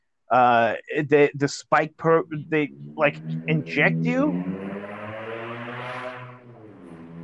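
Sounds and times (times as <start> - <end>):
speech: 0.3 - 4.6
loud car engine roaring past outside: 2.1 - 7.2.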